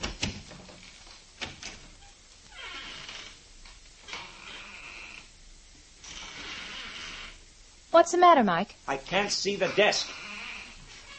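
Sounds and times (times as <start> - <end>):
office door opening with a soft thump and creaking swish: 0.0 - 3.4, 4.0 - 5.3, 6.0 - 7.4, 9.6 - 11.1
speech: 7.9 - 10.2.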